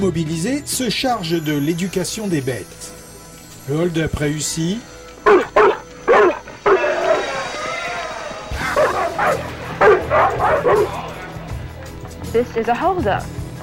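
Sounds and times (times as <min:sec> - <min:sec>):
speech: 0:00.0 - 0:03.0, 0:03.7 - 0:05.4, 0:12.4 - 0:13.4
Doberman dogs barking: 0:05.1 - 0:07.7, 0:08.5 - 0:11.7
Doberman dogs whining and whimpering: 0:05.2 - 0:11.1.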